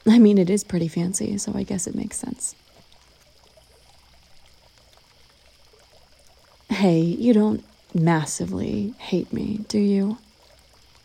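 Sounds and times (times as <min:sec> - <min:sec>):
speech: 0:00.0 - 0:02.7, 0:06.8 - 0:10.2
water fountain trickling: 0:00.0 - 0:11.0.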